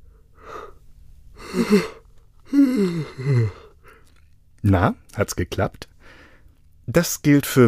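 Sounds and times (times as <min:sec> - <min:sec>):
person yawning: 0:01.4 - 0:03.7
speech: 0:01.5 - 0:02.0, 0:02.8 - 0:03.6, 0:04.6 - 0:05.9, 0:06.9 - 0:07.6.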